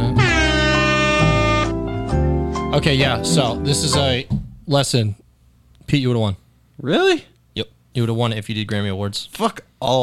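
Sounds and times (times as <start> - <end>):
loud brassy air horn blasts: 0.2 - 2.0
speech: 2.7 - 5.2, 5.9 - 10.0.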